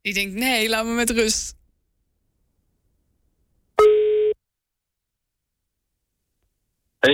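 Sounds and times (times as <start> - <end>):
speech: 0.0 - 1.6
electronic phone ringing tone as a call is placed: 3.8 - 4.4.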